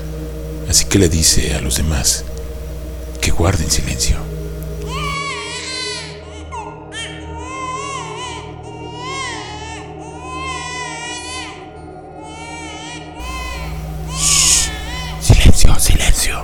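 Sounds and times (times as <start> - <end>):
low constant hum: 0.0 - 5.2, 13.2 - 16.4
speech: 0.7 - 2.4, 3.4 - 4.3
baby crying in long wavering wails: 4.8 - 16.4.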